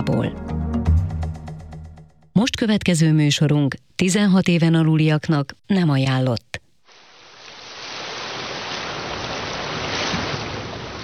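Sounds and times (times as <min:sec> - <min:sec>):
speech: 0:00.0 - 0:00.8, 0:02.4 - 0:06.6
sea surf waves: 0:06.9 - 0:11.0.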